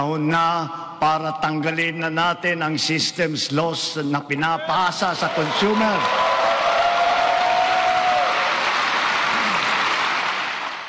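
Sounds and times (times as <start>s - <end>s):
speech: 0.0s - 6.4s
large crowd applauding: 5.3s - 10.8s.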